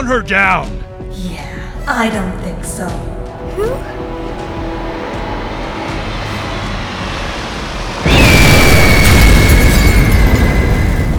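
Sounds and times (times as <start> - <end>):
speech: 0.0 - 4.1
sustained roar: 3.8 - 11.1
car crashing into a wall: 4.5 - 11.1.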